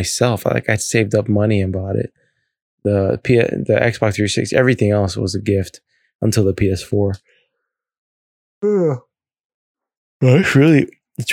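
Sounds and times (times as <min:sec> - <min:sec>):
speech: 0:00.0 - 0:02.2, 0:02.8 - 0:07.3, 0:08.6 - 0:09.1, 0:10.2 - 0:11.3
person yawning: 0:08.6 - 0:09.0.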